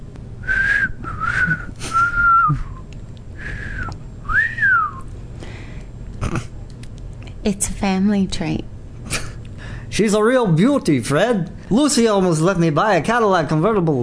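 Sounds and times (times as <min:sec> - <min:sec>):
faint low hum: 0:00.0 - 0:14.0
person whistling short high notes: 0:00.4 - 0:05.1
speech: 0:07.4 - 0:08.7, 0:10.0 - 0:14.0.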